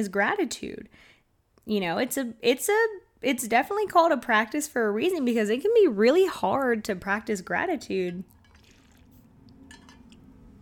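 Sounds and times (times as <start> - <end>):
speech: 0.0 - 8.4
low steady hum: 0.0 - 10.6
person sipping and swallowing water: 8.3 - 10.2.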